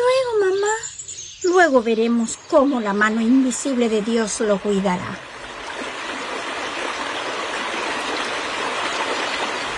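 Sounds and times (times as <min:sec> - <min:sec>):
speech: 0:01.6 - 0:05.3
flowing river water: 0:02.3 - 0:09.7.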